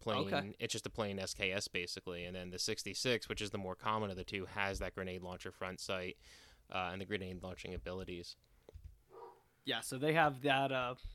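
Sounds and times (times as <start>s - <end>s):
speech: 0.0s - 8.5s, 9.6s - 11.1s
basset hound barking at a home in the woods: 9.1s - 9.4s.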